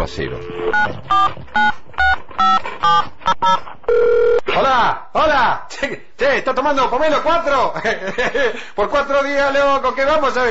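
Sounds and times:
speech: 0.0 - 1.8, 2.4 - 10.4
telephone dialing tones as someone places a call: 0.4 - 4.4.

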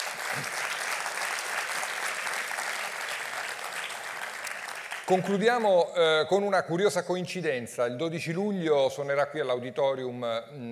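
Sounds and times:
auditorium audience applause at a jazz lecture: 0.0 - 5.5
speech: 5.1 - 10.7.

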